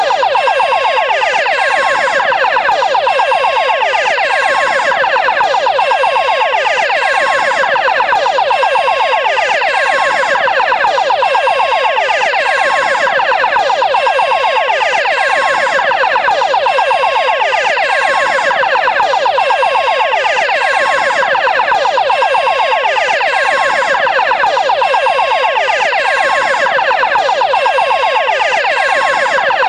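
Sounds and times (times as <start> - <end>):
Atego siren: 0.0 - 29.6.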